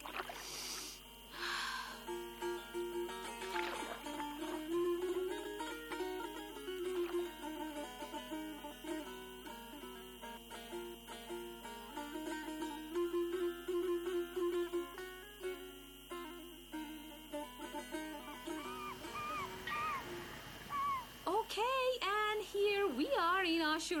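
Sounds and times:
oars dipping and splashing through sea water: 0.0s - 0.7s, 3.5s - 4.0s
steady droning hum: 0.0s - 23.9s.

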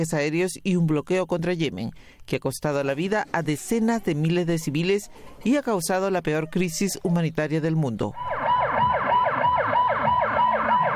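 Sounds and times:
speech: 0.0s - 8.4s
several ambulance sirens wailing at a protest: 8.2s - 10.9s.

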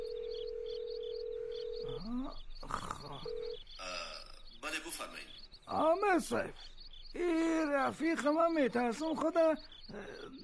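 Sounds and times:
telephone dial tone: 0.0s - 2.1s
speech: 2.0s - 10.4s.

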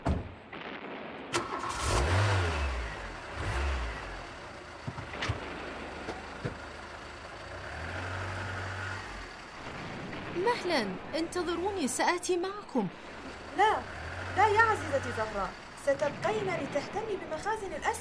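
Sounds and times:
car engine starting, revving and pulling away: 1.4s - 10.4s, 13.0s - 17.1s
speech: 10.6s - 18.0s.

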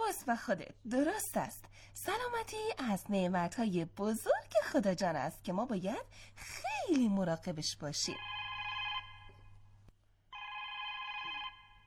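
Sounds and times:
speech: 0.2s - 8.4s
telephone ringing with a bright electronic tone in a studio: 8.2s - 9.5s, 10.3s - 11.8s.

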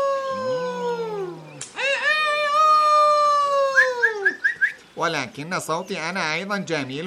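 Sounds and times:
rooster crowing: 0.2s - 4.4s
speech: 5.0s - 7.0s.

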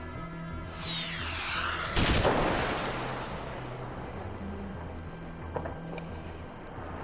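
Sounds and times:
descending whistle of an incoming missile: 0.7s - 3.9s
missile explosion in the district of Fanjatan: 0.8s - 4.7s.

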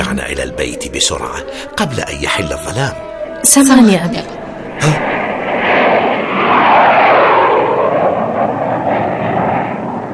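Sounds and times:
speech: 0.1s - 5.2s
enemy warplane flying overhead: 2.4s - 10.1s.

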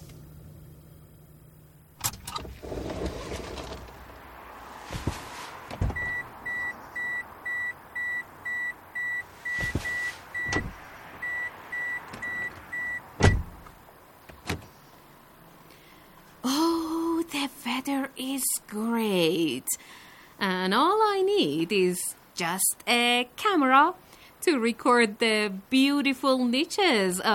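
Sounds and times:
low car engine rumble: 0.0s - 18.0s
mechanical clunks: 2.0s - 4.0s, 5.0s - 7.2s, 9.5s - 10.8s, 11.8s - 14.8s
car door thud: 4.9s - 6.3s, 9.5s - 10.8s, 12.1s - 14.7s
car reversing sensor beeps: 6.0s - 13.0s
speech: 17.8s - 27.3s.

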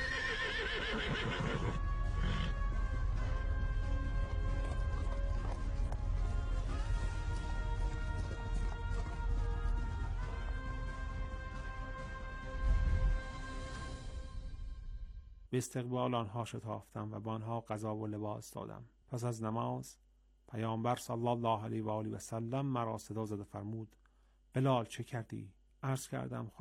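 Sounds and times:
horse whinny: 0.0s - 2.7s
horses' hooves of two riders approaching: 0.0s - 13.9s
speech: 15.6s - 26.5s.

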